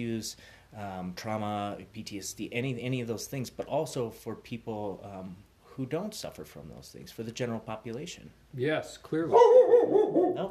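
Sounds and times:
speech: 0.0s - 10.4s
dog barking: 9.3s - 10.4s.

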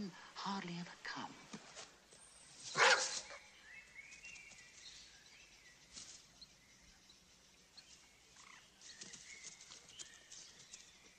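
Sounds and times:
speech: 0.0s - 1.5s
faint outdoor rustles: 1.3s - 5.2s, 5.8s - 6.6s, 7.8s - 11.1s
dog barking in a wood: 2.8s - 3.3s.

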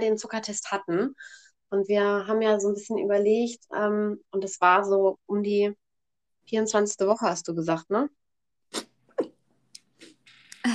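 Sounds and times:
speech: 0.0s - 5.8s, 6.5s - 8.9s
person sneezing: 8.7s - 9.4s.

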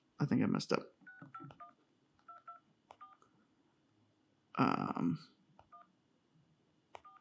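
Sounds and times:
speech: 0.2s - 1.6s, 4.6s - 5.4s
telephone keypad dialing tones on speakerphone: 1.1s - 3.2s, 7.0s - 7.1s.

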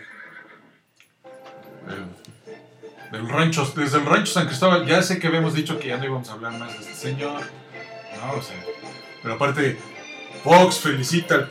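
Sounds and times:
horse whinnying: 0.0s - 0.8s
faint noise: 0.0s - 11.4s
speech: 3.1s - 7.6s, 8.2s - 11.4s.

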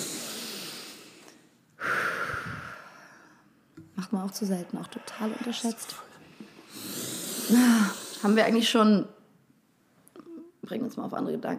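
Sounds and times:
deliberate exhale: 0.0s - 3.5s, 4.4s - 8.5s
slow breath drawn in through the nose: 0.0s - 3.5s, 4.6s - 8.4s
speech: 4.1s - 6.1s, 7.5s - 9.2s, 10.7s - 11.5s.

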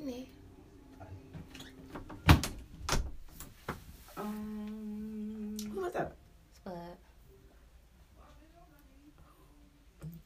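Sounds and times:
steady hum: 0.0s - 10.2s
door being pushed open with latch and frame knocks: 1.6s - 3.4s.

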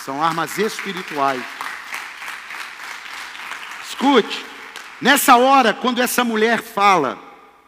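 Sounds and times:
speech: 0.0s - 1.6s, 4.0s - 7.3s
crowd clapping for the Lord during a sermon: 0.0s - 5.6s.

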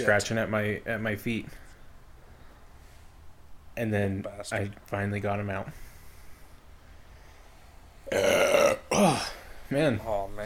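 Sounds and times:
speech: 0.0s - 1.6s, 3.8s - 5.9s, 8.1s - 10.4s
loud burp after drinking soda: 8.0s - 9.6s.

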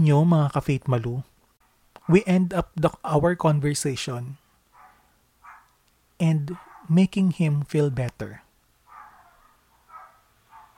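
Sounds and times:
speech: 0.0s - 1.3s, 2.1s - 4.4s, 6.2s - 8.4s
neighbor's dog barking: 2.0s - 2.3s, 4.7s - 5.8s, 6.5s - 6.9s, 8.9s - 10.7s.

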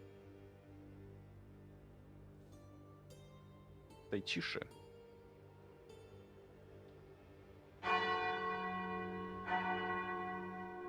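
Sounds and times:
speech: 4.1s - 4.8s
deep church bells striking noon: 7.8s - 10.8s.

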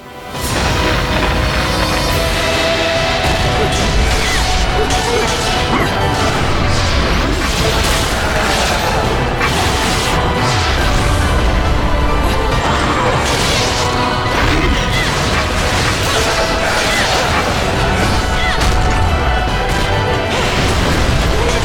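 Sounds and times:
video game ground being smashed apart with crashing and crumbling impacts: 0.3s - 21.6s.

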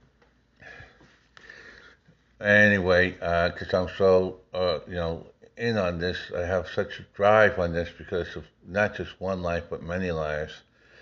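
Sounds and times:
person sniffing during an allergy attack: 0.7s - 2.0s
speech: 2.4s - 10.7s.

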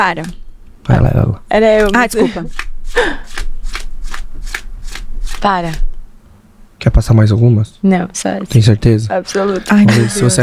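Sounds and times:
speech: 0.0s - 3.4s, 5.4s - 5.9s, 6.8s - 10.4s
playing cards being passed through by hand: 1.8s - 5.9s
laughter: 2.2s - 3.2s.

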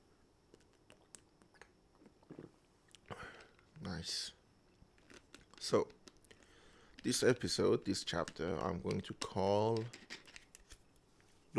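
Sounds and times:
person sipping cold cherry syrup and water drink: 0.5s - 3.6s
person swallowing: 0.9s - 3.3s
speech: 3.8s - 4.4s, 5.6s - 6.0s, 7.0s - 10.1s.

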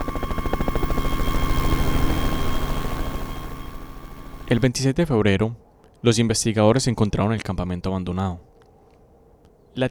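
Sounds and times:
police and army search helicopter rotor thumping: 0.0s - 4.7s
speech: 4.5s - 8.5s, 9.8s - 9.9s.

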